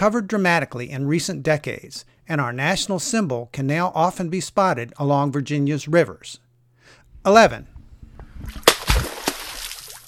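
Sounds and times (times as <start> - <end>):
speech: 0.0 - 6.4, 7.2 - 7.7
water sloshing and gurgling: 8.1 - 10.0
American beaver in Virginia slapping its paddle-like tail on water: 8.4 - 10.0.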